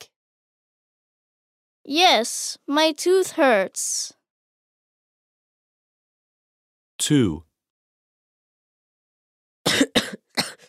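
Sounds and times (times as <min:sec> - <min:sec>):
speech: 0:01.9 - 0:04.2, 0:07.0 - 0:07.5, 0:09.7 - 0:09.9
harsh coughs: 0:09.7 - 0:10.6.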